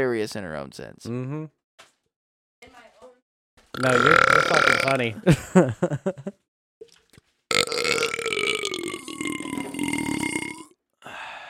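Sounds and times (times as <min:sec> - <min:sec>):
speech: 0:00.0 - 0:01.6, 0:03.7 - 0:06.4
loud drawn-out burp: 0:03.7 - 0:05.2, 0:07.5 - 0:10.8
laughter: 0:05.0 - 0:06.4.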